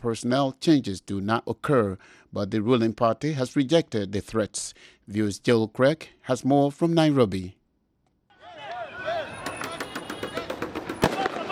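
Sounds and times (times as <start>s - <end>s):
speech: 0.0s - 7.6s
protesters shouting as they retreat: 8.3s - 11.5s
police firing tear gas outside an electoral commission building: 9.8s - 11.5s.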